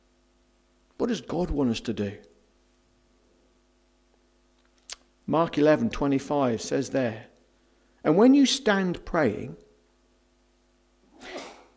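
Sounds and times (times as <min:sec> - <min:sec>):
speech: 0:01.0 - 0:02.3, 0:05.3 - 0:07.3, 0:08.0 - 0:09.6
person sneezing: 0:11.1 - 0:11.7.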